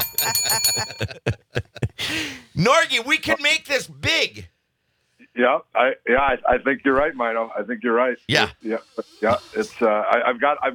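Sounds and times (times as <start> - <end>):
bell ringing: 0.0 - 1.2
speech: 0.3 - 1.4, 2.6 - 4.5, 5.4 - 10.7.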